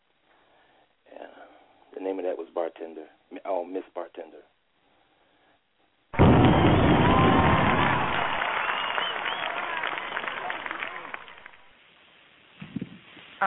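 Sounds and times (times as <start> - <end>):
speech: 1.9 - 4.6
audience applause after a poem: 6.2 - 11.7
crowd voices: 6.5 - 11.6.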